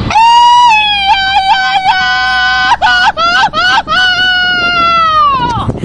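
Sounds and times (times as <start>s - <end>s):
high-pitched festive Mexican grito with yodel-like breaks: 0.1s - 5.7s.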